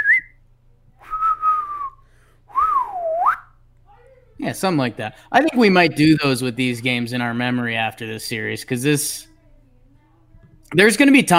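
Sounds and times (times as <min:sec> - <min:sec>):
person whistling an excited little tune: 0:00.0 - 0:00.4, 0:01.0 - 0:03.5
speech: 0:04.4 - 0:09.3, 0:10.7 - 0:11.3.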